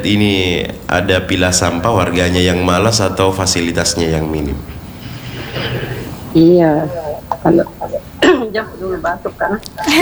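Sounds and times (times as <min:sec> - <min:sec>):
speech: 0:00.0 - 0:04.8, 0:05.5 - 0:10.0
laughter: 0:01.5 - 0:10.0
cough turned away from the microphone in a studio: 0:05.4 - 0:10.0.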